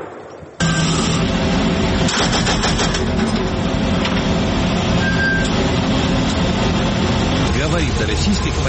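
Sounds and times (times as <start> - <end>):
constant rumbling engine of an armored vehicle: 0.6 - 8.6
heavy-calibre machine gun on an armored vehicle firing bursts: 2.0 - 3.2
speech: 8.1 - 8.6.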